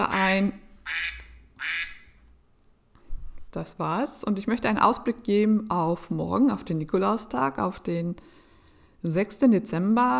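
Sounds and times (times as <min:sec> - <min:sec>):
speech: 0:00.0 - 0:01.2, 0:03.6 - 0:08.4, 0:09.0 - 0:10.1
nasal duck-quack tones from a mobile phone timer: 0:00.0 - 0:02.0.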